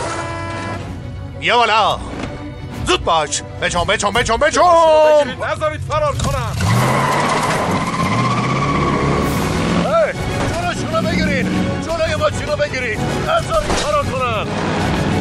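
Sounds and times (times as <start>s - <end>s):
speech: 1.4s - 2.2s, 2.9s - 7.2s, 12.3s - 15.0s
loud continuous car engine roar during a chase: 5.6s - 11.9s, 14.1s - 15.1s
car tires screeching during a chase: 6.1s - 11.8s.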